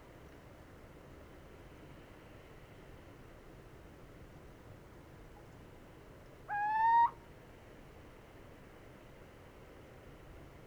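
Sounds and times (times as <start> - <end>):
male Cucumiau hooting in Italy: 6.5 - 7.2.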